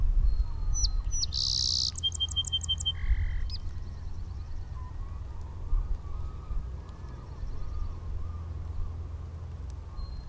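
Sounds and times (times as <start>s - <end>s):
faint bird chirps: 0.2s - 10.2s
song sparrow singing: 0.2s - 10.2s.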